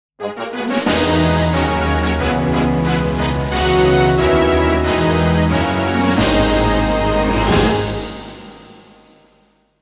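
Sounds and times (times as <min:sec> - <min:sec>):
fanfare: 0:00.2 - 0:09.0.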